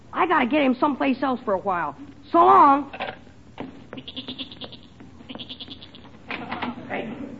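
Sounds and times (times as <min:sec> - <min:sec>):
speech: 0:00.2 - 0:03.0, 0:06.9 - 0:07.3
restless goat bleating in a cellar: 0:04.0 - 0:06.1.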